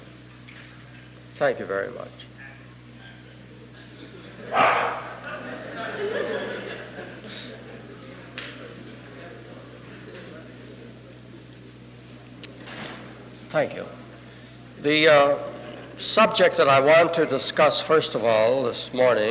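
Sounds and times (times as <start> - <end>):
faint murmuring: 0.0 - 19.3
speech: 1.4 - 2.4, 13.5 - 14.0, 14.8 - 19.3
laughter: 2.4 - 12.7
dog barking during a lecture: 4.5 - 5.2.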